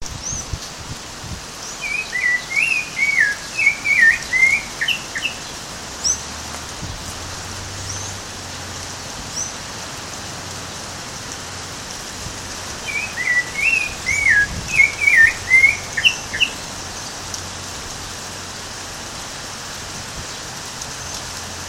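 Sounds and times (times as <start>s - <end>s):
Turdus rufiventris singing: 1.8s - 8.7s, 12.6s - 16.9s.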